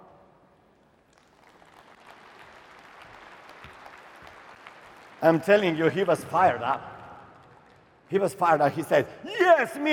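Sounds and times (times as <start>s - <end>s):
audience clapping: 0.9s - 8.8s
speech: 5.2s - 6.9s, 8.1s - 9.9s.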